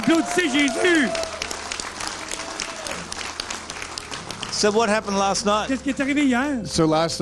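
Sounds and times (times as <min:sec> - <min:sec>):
loud exclamation from a voice: 0:00.0 - 0:01.4
crowd applauding: 0:00.0 - 0:06.7
speech: 0:00.1 - 0:01.4, 0:04.6 - 0:07.1.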